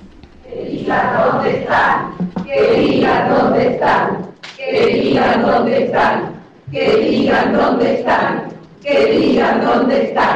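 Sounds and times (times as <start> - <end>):
crowd chanting at a court hearing: 0.5 - 10.3
heavy thump: 1.9 - 3.1, 6.6 - 7.3.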